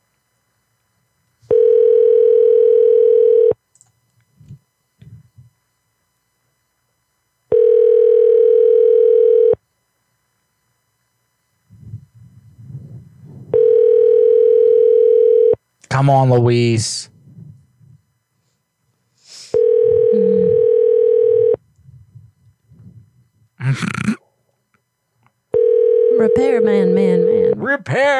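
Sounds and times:
telephone ringback tone on an unanswered call: 0:01.5 - 0:03.6, 0:07.5 - 0:09.6, 0:13.5 - 0:15.6, 0:19.6 - 0:21.6, 0:25.5 - 0:27.6
speech: 0:16.0 - 0:17.1, 0:27.8 - 0:28.1.

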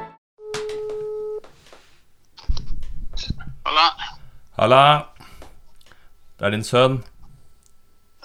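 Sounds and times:
steady phone ringing tone of an outgoing call: 0:00.4 - 0:01.4
speech: 0:04.6 - 0:05.1, 0:06.4 - 0:07.1.

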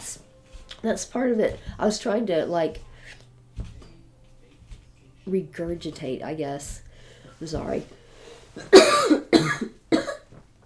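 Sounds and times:
speech: 0:00.8 - 0:02.9, 0:05.3 - 0:06.8, 0:07.4 - 0:08.0, 0:08.6 - 0:09.2
person coughing: 0:08.6 - 0:10.3.

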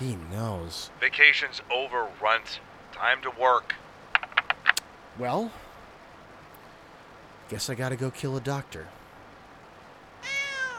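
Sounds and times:
speech: 0:00.0 - 0:03.8, 0:05.2 - 0:05.6, 0:07.5 - 0:09.0
cat meowing: 0:10.2 - 0:10.7.

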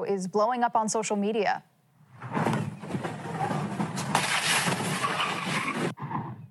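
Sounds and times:
speech: 0:00.0 - 0:02.4
2018 Tesla speeding through an intersection in Los Angeles: 0:02.2 - 0:06.4
car slamming into parked cars and trash cans: 0:02.4 - 0:06.0.

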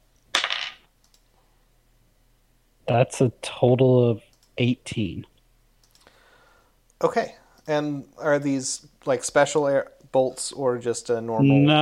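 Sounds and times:
dice rolled in a tabletop game clattering onto a hard surface: 0:00.3 - 0:00.9
speech: 0:02.9 - 0:05.3, 0:07.0 - 0:11.8.

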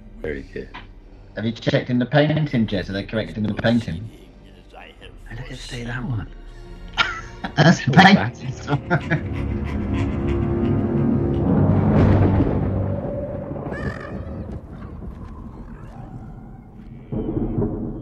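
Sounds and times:
speech: 0:00.2 - 0:00.8, 0:01.4 - 0:04.2, 0:05.3 - 0:06.4, 0:07.4 - 0:10.3
laughter: 0:06.9 - 0:12.0
deep rolling thunder: 0:11.2 - 0:18.0.

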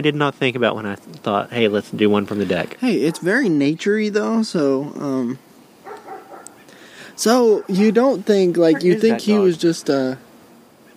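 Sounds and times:
speech: 0:00.0 - 0:05.4, 0:07.2 - 0:10.2
people talking quietly: 0:00.0 - 0:10.3
dog barking: 0:03.0 - 0:03.4, 0:05.8 - 0:06.6, 0:07.5 - 0:07.9.

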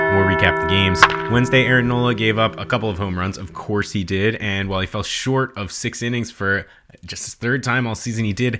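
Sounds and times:
single bell struck with a bright metallic ring: 0:00.1 - 0:04.6
steady tonal hum: 0:00.1 - 0:05.0
speech: 0:00.4 - 0:08.5.

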